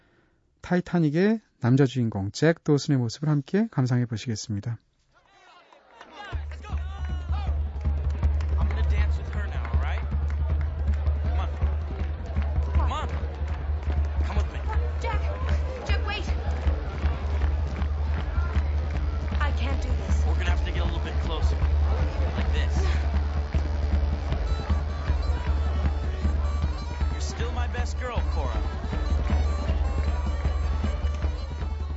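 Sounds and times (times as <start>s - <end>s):
speech: 0.7s - 4.9s
noisy crowd chattering: 5.2s - 31.9s
lively Irish-style dance music: 11.0s - 31.9s.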